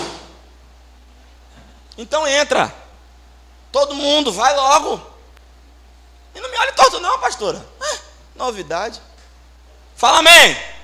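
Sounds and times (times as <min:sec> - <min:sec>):
door shutting with a sharp thud: 0:00.0 - 0:00.4
quiet low room hum: 0:00.0 - 0:10.8
speech: 0:02.0 - 0:02.8, 0:03.7 - 0:05.1, 0:06.6 - 0:07.7, 0:08.4 - 0:09.1, 0:10.0 - 0:10.7.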